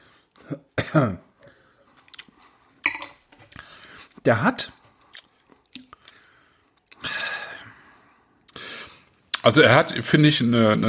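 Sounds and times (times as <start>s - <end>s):
speech: 0.5s - 1.2s, 4.2s - 4.8s, 9.5s - 10.8s
person clearing throat: 0.5s - 1.3s.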